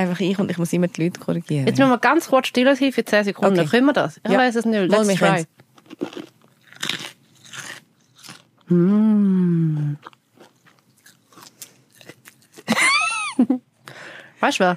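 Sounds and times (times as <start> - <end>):
speech: 0.0 - 6.3, 8.7 - 10.2, 14.4 - 14.7
crisp crunching of food close to the microphone: 5.6 - 8.7, 9.9 - 12.7
brief high vocal sound: 8.7 - 10.0.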